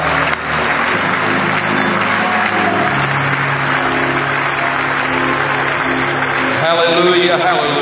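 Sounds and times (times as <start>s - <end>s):
church audience applause: 0.0s - 7.8s.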